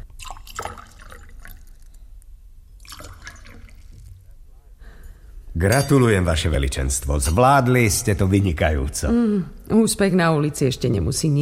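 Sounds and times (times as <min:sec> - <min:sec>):
liquid pouring from a jug into a vessel: 0:00.0 - 0:04.3
speech: 0:05.6 - 0:11.3.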